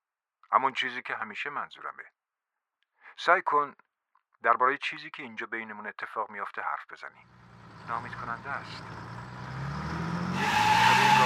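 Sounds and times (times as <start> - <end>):
speech: 0.5 - 2.2, 3.2 - 9.1
car engine roar: 7.3 - 11.2
car tires screeching while braking suddenly and swerving to avoid a truck: 7.3 - 11.2.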